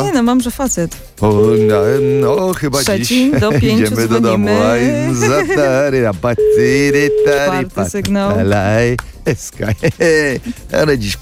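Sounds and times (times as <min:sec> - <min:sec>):
speech: 0:00.0 - 0:11.1
steady telephone ringback tone while calling: 0:01.3 - 0:02.4, 0:06.4 - 0:07.8
laughter: 0:02.9 - 0:06.9, 0:09.3 - 0:10.8.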